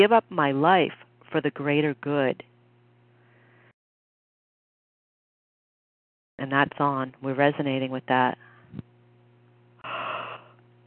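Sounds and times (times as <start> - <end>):
speech: 0.0 - 2.5, 6.4 - 8.9
breathy yawn after sharp intake of breath: 9.8 - 10.6.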